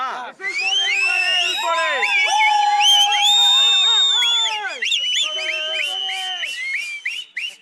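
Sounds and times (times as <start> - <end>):
excited voices: 0.0 - 6.8
crowd of supporters blowing whistles in celebration: 0.4 - 7.6.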